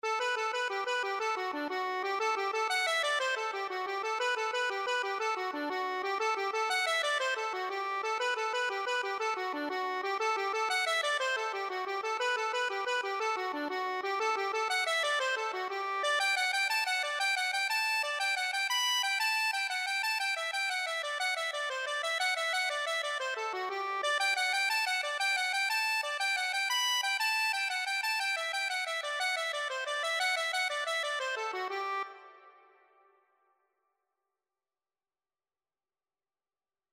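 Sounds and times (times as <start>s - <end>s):
accordion: 0.0s - 32.6s.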